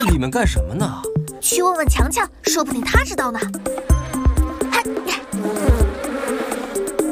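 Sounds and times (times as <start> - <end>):
speech: 0.1 - 3.9
swarm of many bees buzzing: 3.5 - 7.0.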